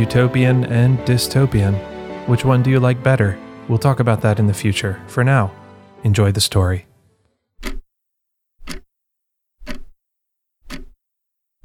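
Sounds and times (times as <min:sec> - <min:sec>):
speech: 0:00.0 - 0:06.9
mechanical clock second hand ticking: 0:07.6 - 0:07.8, 0:08.6 - 0:08.9, 0:09.6 - 0:10.0, 0:10.6 - 0:11.0.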